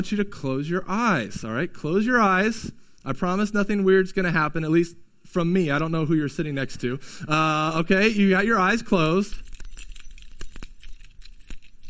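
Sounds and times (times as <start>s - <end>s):
speech: 0.0s - 9.5s
keys jangling in a hand: 9.0s - 11.8s.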